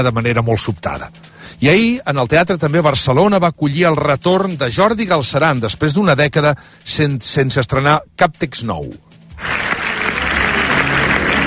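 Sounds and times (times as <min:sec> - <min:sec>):
speech: 0:00.0 - 0:09.6
theatre audience clapping in an ovation after a comedy premiere: 0:09.3 - 0:11.4.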